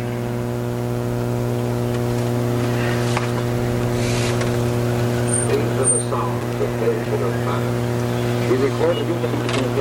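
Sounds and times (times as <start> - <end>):
low engine drone inside a moving car in traffic: 0.0 - 9.7
voices: 2.0 - 9.7.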